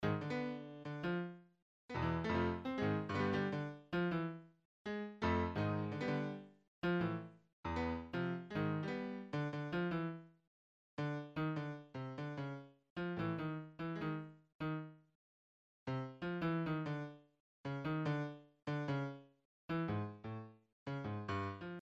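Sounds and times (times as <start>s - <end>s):
playful piano music: 0.0s - 10.2s, 11.0s - 15.0s, 15.9s - 21.7s.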